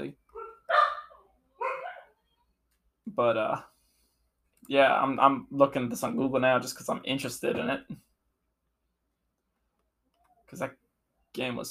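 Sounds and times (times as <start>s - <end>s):
dogs barking: 0.3s - 2.1s
speech: 3.2s - 3.7s, 4.7s - 8.0s, 10.5s - 10.8s, 11.4s - 11.6s.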